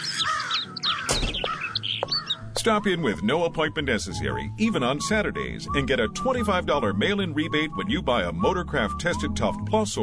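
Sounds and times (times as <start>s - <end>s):
birds cawing and chirping at a nest above a parked convertible: 0.0s - 2.6s
speech: 2.6s - 10.0s.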